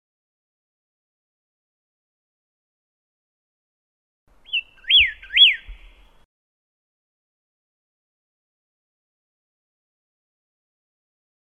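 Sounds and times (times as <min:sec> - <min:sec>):
Pyrrhuloxia whistling song: 0:04.4 - 0:06.2.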